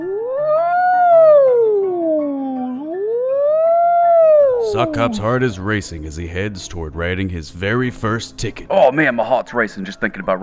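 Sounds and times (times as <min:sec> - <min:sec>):
human voice imitating a police siren: 0:00.0 - 0:05.8
speech: 0:04.7 - 0:10.4.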